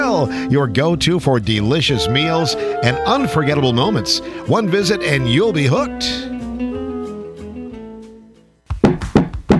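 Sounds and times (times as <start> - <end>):
speech: 0.2 - 6.3
short musical tone: 2.0 - 6.5
loud knocking on a door by an officer: 8.8 - 9.5.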